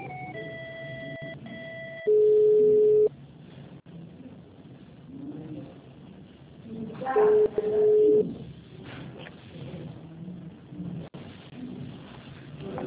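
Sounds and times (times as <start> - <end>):
telephone line tones while a call is placed: 0.0 - 3.1, 7.6 - 8.2
telephone mid-pitched ringing beeps: 0.0 - 3.1.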